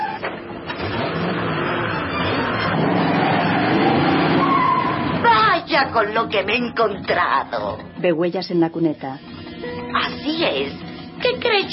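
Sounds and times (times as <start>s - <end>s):
car arriving on a snowy road, braking and reversing: 0.0s - 5.2s
speech: 5.8s - 9.3s, 10.0s - 11.7s.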